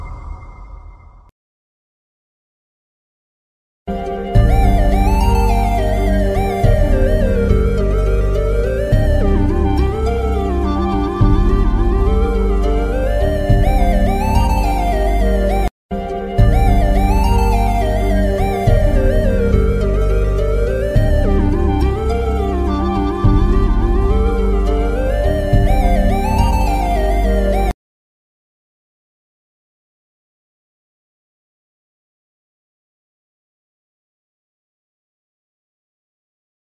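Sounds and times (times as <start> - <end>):
violin background music: 3.9 - 27.7
flute ringtone: 3.9 - 27.8.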